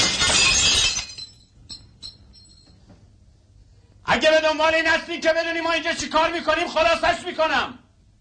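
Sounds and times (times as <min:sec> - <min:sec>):
glass pane in an entrance door smashed with a rifle butt: 0:00.0 - 0:01.5
small glass pieces dropping: 0:00.0 - 0:02.7
bright glass shards tinkling: 0:00.0 - 0:02.8
speech: 0:04.1 - 0:07.8.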